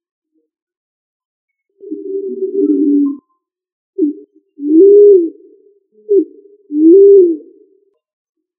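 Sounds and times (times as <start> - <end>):
pigeon cooing: 1.8 - 3.3, 4.0 - 7.8.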